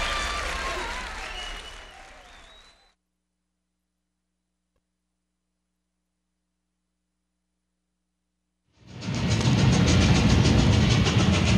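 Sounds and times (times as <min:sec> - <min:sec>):
train rumbling along the tracks: 0:09.1 - 0:11.5.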